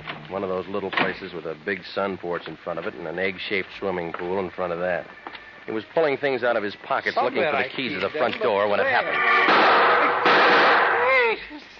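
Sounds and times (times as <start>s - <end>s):
speech: 0.3s - 9.7s
gunshots in a radio drama: 9.4s - 11.0s.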